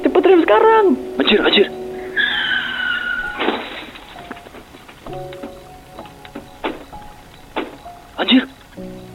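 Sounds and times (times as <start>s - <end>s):
speech: 0.5s - 1.8s
new car's tires screeching on an empty road: 2.0s - 5.0s
new car crashing: 2.2s - 5.2s.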